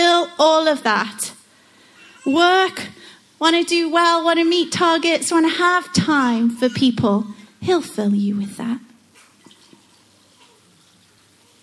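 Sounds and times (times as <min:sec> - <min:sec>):
speech: 0:00.4 - 0:01.2, 0:02.2 - 0:08.9
water pouring into a glass: 0:09.4 - 0:11.2.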